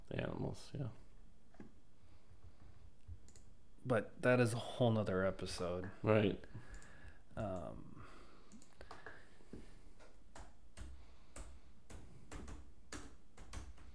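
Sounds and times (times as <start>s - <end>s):
speech: 0.1s - 1.8s, 3.8s - 6.7s, 7.4s - 8.0s
typing hard on a computer keyboard: 10.0s - 13.9s.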